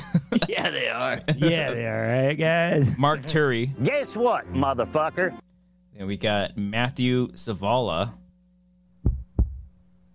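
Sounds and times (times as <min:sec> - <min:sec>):
faint steady electronic hum: 0:00.0 - 0:10.1
speech: 0:00.3 - 0:08.2
heartbeat sound effect: 0:09.0 - 0:10.1.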